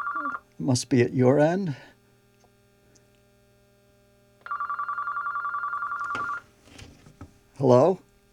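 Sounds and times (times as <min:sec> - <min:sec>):
telephone ringing with electronic trill: 0:00.0 - 0:00.4, 0:04.4 - 0:06.5
speech: 0:00.6 - 0:01.9, 0:07.6 - 0:08.0.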